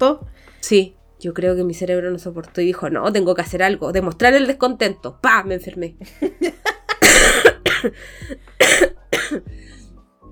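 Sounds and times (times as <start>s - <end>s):
speech: 0.0s - 6.6s, 7.8s - 9.8s
short breaths: 0.3s - 0.6s, 7.9s - 8.6s
person coughing: 6.9s - 9.5s.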